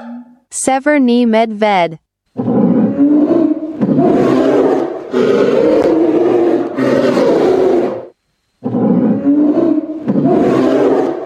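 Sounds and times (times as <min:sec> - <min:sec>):
speech: 0:00.6 - 0:02.6, 0:05.1 - 0:05.7
tiger roaring: 0:02.4 - 0:11.2.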